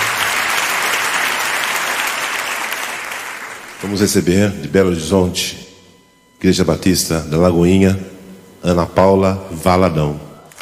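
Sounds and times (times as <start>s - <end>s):
large crowd applauding: 0.0s - 4.2s
speech: 3.8s - 5.7s, 6.4s - 10.3s.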